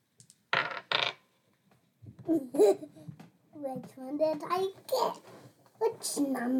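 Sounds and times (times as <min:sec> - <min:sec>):
two dice rolling on a hard surface: 0:00.2 - 0:01.2
speech: 0:02.3 - 0:06.5.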